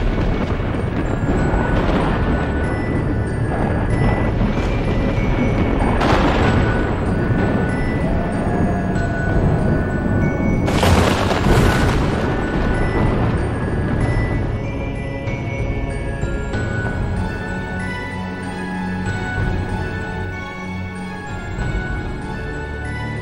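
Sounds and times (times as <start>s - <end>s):
thunder and lightning striking over a cemetery: 0.0s - 23.2s.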